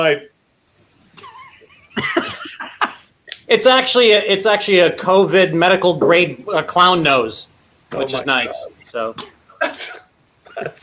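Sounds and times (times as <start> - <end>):
speech: 0.0 - 0.3, 3.5 - 10.0, 10.6 - 10.8
person coughing: 8.4 - 10.8.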